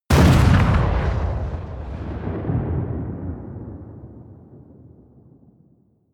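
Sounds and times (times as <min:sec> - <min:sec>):
small missile exploding close: 0:00.1 - 0:03.9.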